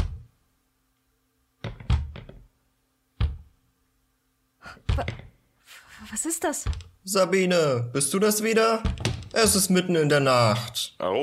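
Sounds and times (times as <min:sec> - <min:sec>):
irregular knocking in a stairwell at night: 0:00.0 - 0:00.3, 0:01.6 - 0:02.5, 0:03.2 - 0:03.6, 0:04.7 - 0:05.4, 0:06.5 - 0:07.0, 0:08.7 - 0:09.9
speech: 0:04.8 - 0:05.2, 0:06.1 - 0:11.2.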